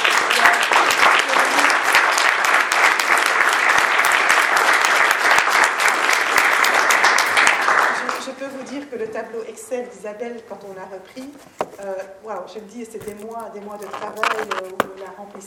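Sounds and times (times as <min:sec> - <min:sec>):
audience applause: 0:00.0 - 0:08.3
speech: 0:09.2 - 0:15.4.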